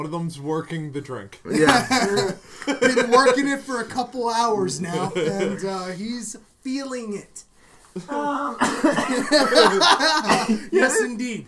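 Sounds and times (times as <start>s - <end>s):
speech: 0.0s - 11.4s
laughter: 1.5s - 5.8s, 8.0s - 11.2s
strained voiced hack and harsh raspy coughs: 8.1s - 11.0s.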